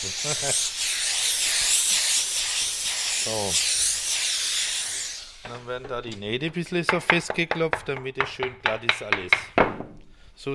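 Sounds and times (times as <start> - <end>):
speech: 0.0 - 0.9, 3.2 - 3.8, 5.4 - 10.5
steam iron hissing on a cap: 0.0 - 5.8.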